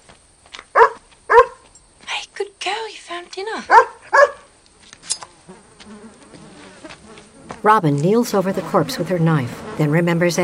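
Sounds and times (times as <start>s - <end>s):
dog barking near a kangaroo carcass: 0.7s - 1.6s, 3.7s - 4.5s
speech: 3.4s - 4.0s, 7.6s - 10.4s.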